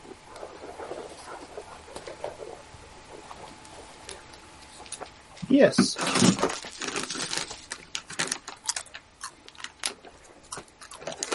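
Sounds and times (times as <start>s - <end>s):
speech: 5.5s - 6.4s
plastic bag of dice crinkling and rustling: 6.0s - 11.3s.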